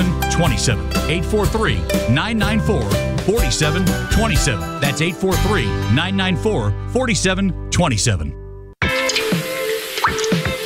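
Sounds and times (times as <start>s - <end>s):
speech: 0.0s - 8.4s
water dripping from a leaky faucet: 8.8s - 10.6s.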